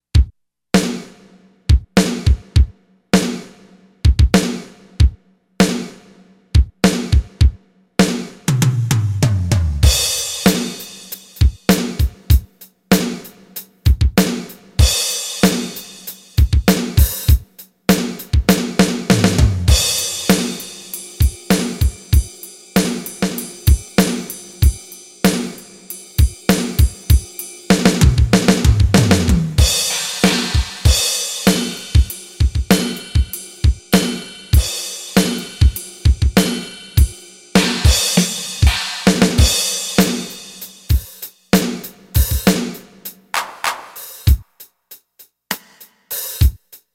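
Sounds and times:
factory rhythm set on a synthesizer module: 0.1s - 46.9s.

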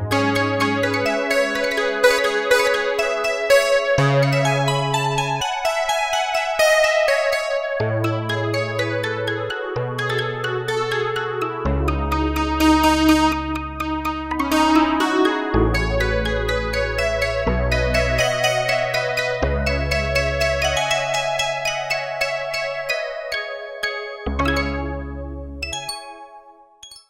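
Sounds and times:
Stick Bells on Roland MKS-70 synthesizer: 0.1s - 27.0s.

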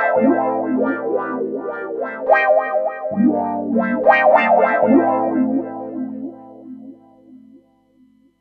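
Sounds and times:
wah guitar riff: 0.1s - 6.8s.

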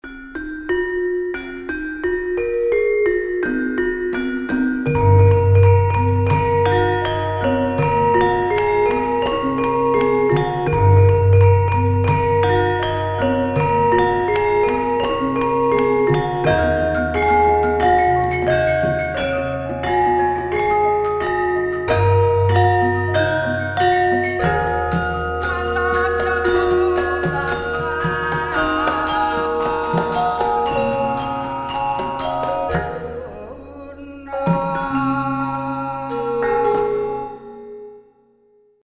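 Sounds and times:
gamelan orchestra phrases: 0.0s - 38.2s.

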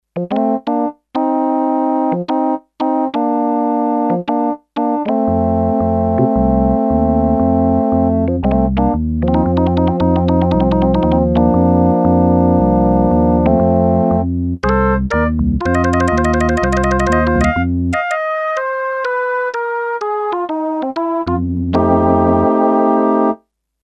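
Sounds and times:
Sequential Circuits Six-Trak percussive organ: 0.2s - 23.0s.

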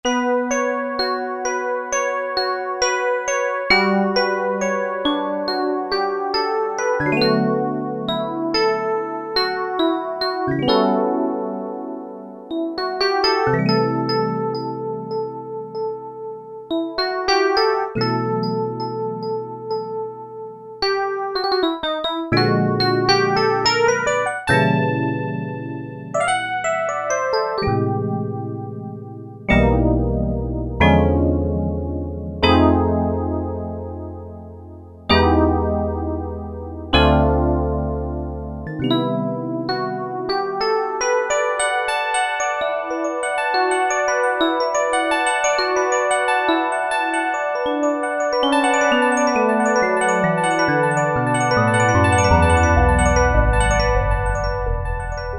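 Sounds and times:
Roland MKS-70 electric piano: 0.0s - 55.3s.

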